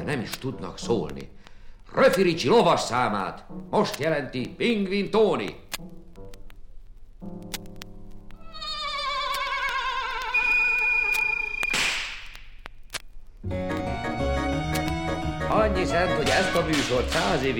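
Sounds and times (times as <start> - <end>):
speech: 0.0 - 6.0, 15.7 - 17.5
rising whistling tone: 9.9 - 12.1
sharp whip crack: 11.1 - 12.4
bouncy music: 13.4 - 17.5.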